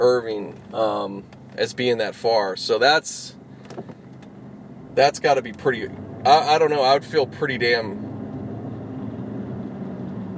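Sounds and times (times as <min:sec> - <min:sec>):
speech: 0:00.0 - 0:03.4, 0:05.0 - 0:08.0
low car engine rumble outside: 0:00.0 - 0:10.3.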